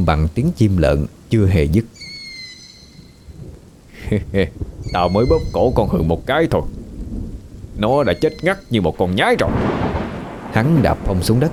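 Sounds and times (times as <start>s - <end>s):
speech: 0.0s - 2.0s, 4.1s - 6.8s, 7.8s - 9.7s, 10.5s - 11.5s
light drizzling rain: 0.0s - 11.5s
low rumbling: 3.2s - 11.5s.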